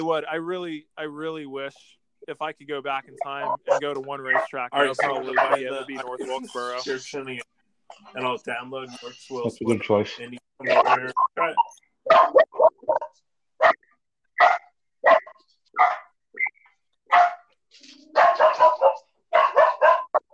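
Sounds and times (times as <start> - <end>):
speech: 0.0 - 12.4
dog barking: 3.5 - 5.7, 12.0 - 13.8, 14.4 - 16.1, 17.1 - 17.4, 18.2 - 20.3.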